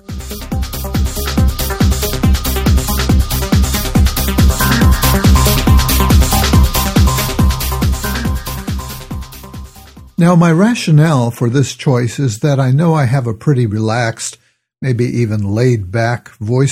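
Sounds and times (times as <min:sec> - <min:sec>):
up-tempo transitional music snippet between podcast segments: 0:00.0 - 0:10.2
speech: 0:10.2 - 0:16.7.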